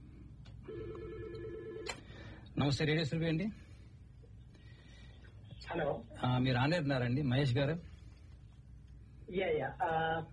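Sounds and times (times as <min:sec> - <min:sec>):
telephone ringing with an incoming call: 0:00.6 - 0:02.3
speech: 0:02.6 - 0:03.6, 0:05.7 - 0:07.9, 0:09.3 - 0:10.3.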